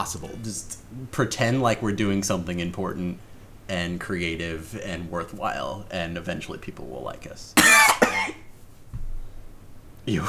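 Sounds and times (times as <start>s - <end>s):
speech: 0.0s - 8.4s, 10.1s - 10.2s
cough: 7.6s - 8.4s
throaty catch: 7.6s - 8.4s.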